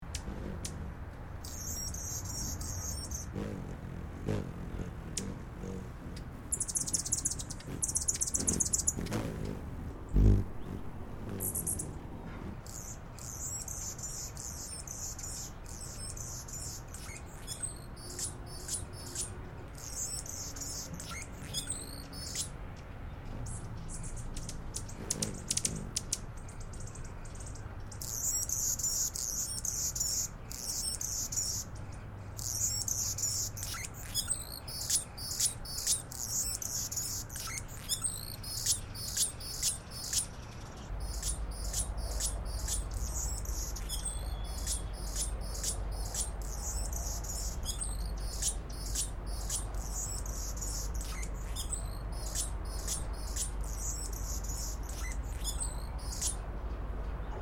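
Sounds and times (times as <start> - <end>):
Anna's hummingbird: 0.0 - 57.3.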